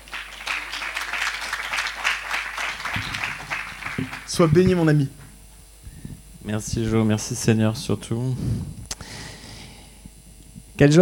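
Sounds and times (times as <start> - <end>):
audience applause: 0.0 - 5.0
speech: 4.4 - 5.2, 6.5 - 8.8, 10.8 - 10.9.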